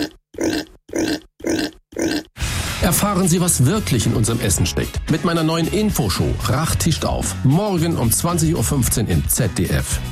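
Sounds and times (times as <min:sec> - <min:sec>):
pig grunting: 0:00.0 - 0:02.4
speech: 0:02.9 - 0:10.1.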